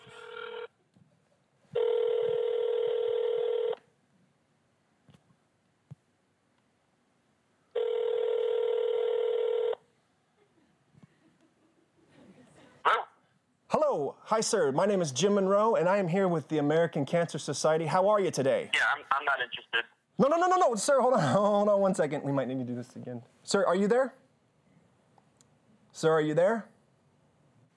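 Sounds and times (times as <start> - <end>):
long steady electronic telephone ringback tones through a handset: 0.0 - 0.7, 1.8 - 3.8, 7.8 - 9.8
speech: 14.3 - 24.2, 26.0 - 26.7.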